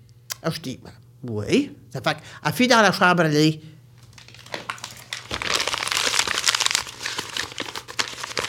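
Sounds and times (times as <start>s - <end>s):
speech: 0.4s - 3.7s
paper letter crinkling as it is unfolded: 4.0s - 8.4s.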